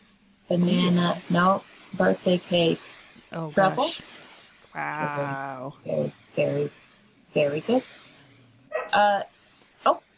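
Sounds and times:
speech: 0:00.5 - 0:08.0, 0:08.9 - 0:10.0
female dog barking: 0:08.7 - 0:09.0.

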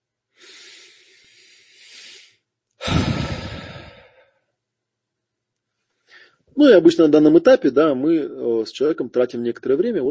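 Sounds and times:
deep breath in and out: 0:00.4 - 0:04.5, 0:06.0 - 0:06.5
speech: 0:06.6 - 0:10.0.

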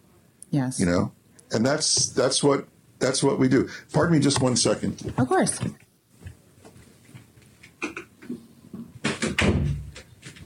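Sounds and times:
speech: 0:00.5 - 0:05.8
door closing with a solid thump: 0:09.0 - 0:10.1.

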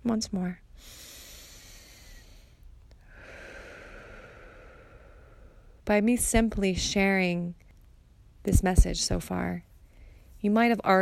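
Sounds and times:
speech: 0:00.0 - 0:01.0, 0:05.9 - 0:07.6, 0:08.4 - 0:09.7, 0:10.4 - 0:11.0
deep breath in and out: 0:00.8 - 0:05.8.

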